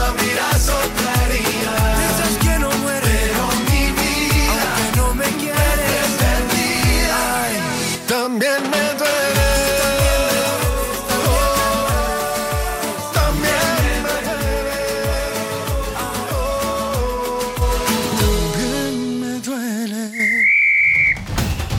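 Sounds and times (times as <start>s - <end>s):
upbeat music with a steady thumping beat: 0.0s - 7.8s, 8.4s - 19.0s, 21.0s - 21.7s
referee's shrill final whistle blast: 20.1s - 21.6s.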